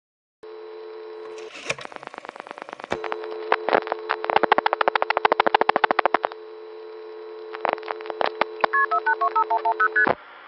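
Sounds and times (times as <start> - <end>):
steady line tone on NX1 telephone switching system in Greenville North Carolina: 0.4 - 10.2
short quiet multi-tone beeps of long-distance call signalling: 8.7 - 10.1.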